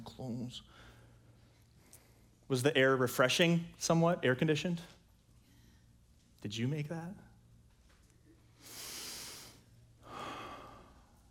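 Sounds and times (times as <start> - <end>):
quiet steady hum: 0.0 - 11.3
speech: 0.2 - 0.9, 2.5 - 5.0, 6.4 - 7.3
deep breathing in and out: 0.6 - 2.5, 8.5 - 11.3.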